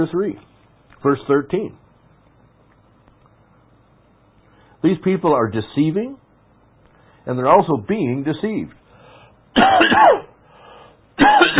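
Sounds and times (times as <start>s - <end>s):
speech: 0.0s - 1.8s, 4.8s - 6.2s, 7.2s - 8.8s, 9.6s - 10.3s, 11.2s - 11.5s
harsh throat clearing from a tickle in the throat: 9.6s - 10.4s, 11.2s - 11.5s.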